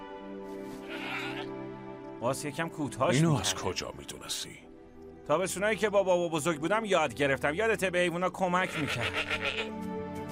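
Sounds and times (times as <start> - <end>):
overgrown heavily woolled sheep bleating: 0.7 - 1.6, 8.6 - 9.8
speech: 2.2 - 4.7, 5.3 - 9.9.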